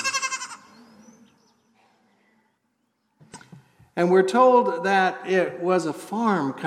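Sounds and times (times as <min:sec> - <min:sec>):
goat bleating: 0:00.0 - 0:00.7
speech: 0:04.0 - 0:06.6.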